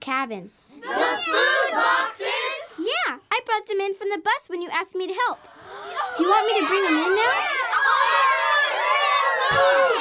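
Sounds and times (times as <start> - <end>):
speech: 0.1 - 2.4, 3.1 - 8.2, 9.5 - 10.0
many people shouting and cheering: 0.8 - 2.9, 5.4 - 10.0.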